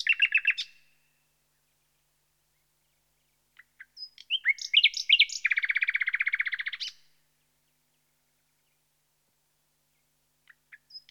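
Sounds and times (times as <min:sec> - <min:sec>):
common nightingale singing: 0:00.0 - 0:11.0.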